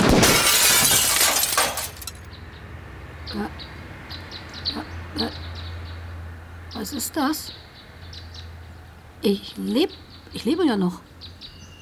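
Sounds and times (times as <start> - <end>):
kitchen window glass shattered by a gunshot: 0.0 - 2.3
speech: 6.9 - 7.7, 9.2 - 11.1.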